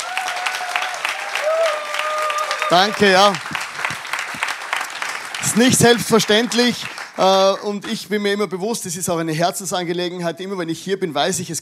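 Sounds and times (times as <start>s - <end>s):
audience applauding at a church gathering: 0.0s - 8.1s
speech: 2.7s - 3.6s, 5.5s - 11.6s.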